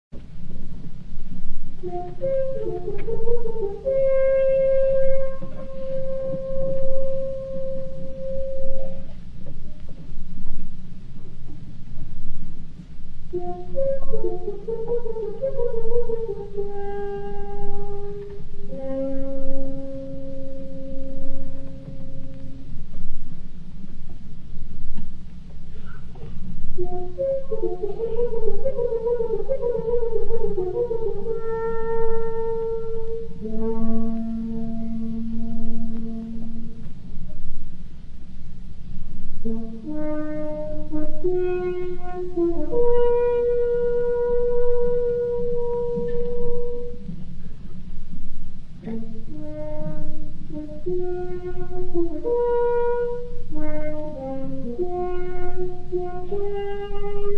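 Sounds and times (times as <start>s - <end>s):
horn call played live: 1.8s - 9.2s, 13.3s - 22.7s, 25.8s - 36.8s, 39.4s - 47.2s, 48.8s - 57.3s.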